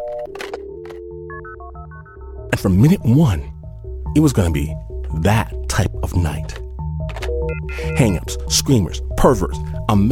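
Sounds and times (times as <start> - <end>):
electronic phone keypad dual-pitch tones: 0.0 - 2.2, 7.3 - 8.2
speech: 2.5 - 3.5, 4.2 - 6.6, 7.7 - 10.1.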